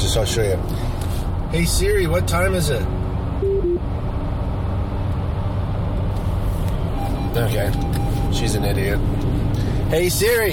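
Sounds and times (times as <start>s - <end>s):
road noise inside a moving car: 0.0s - 10.5s
speech: 0.2s - 3.0s, 7.4s - 9.2s, 9.9s - 10.5s
faint tonal beeps: 3.4s - 3.8s, 7.0s - 8.4s.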